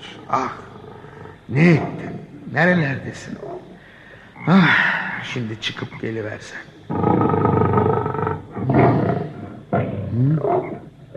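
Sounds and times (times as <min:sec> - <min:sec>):
lion roaring: 0:00.0 - 0:02.7, 0:06.9 - 0:11.1
speech: 0:00.3 - 0:00.7, 0:01.5 - 0:03.7, 0:04.4 - 0:07.6, 0:10.2 - 0:10.9.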